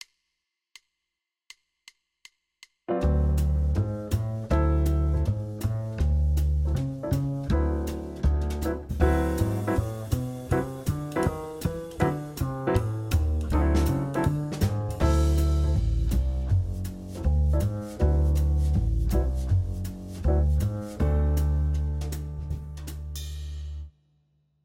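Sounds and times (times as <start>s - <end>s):
D mixolydian music: 2.9s - 6.4s, 7.1s - 23.0s.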